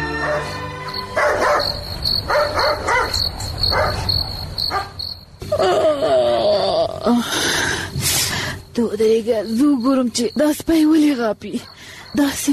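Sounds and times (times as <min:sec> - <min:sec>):
dog barking in short bursts: 0:00.2 - 0:05.0
crickets chirring: 0:00.2 - 0:06.4, 0:07.4 - 0:12.5
speech: 0:09.2 - 0:12.5.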